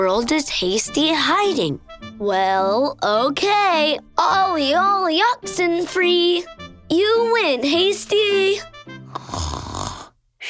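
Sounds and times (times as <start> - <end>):
speech: 0.0 - 9.3
soft rasping snore with whistling exhale: 9.1 - 10.2.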